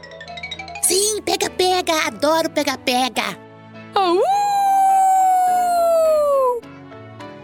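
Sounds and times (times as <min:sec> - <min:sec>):
speech: 0:00.9 - 0:03.4, 0:04.0 - 0:04.4
wolf howling: 0:04.2 - 0:06.6.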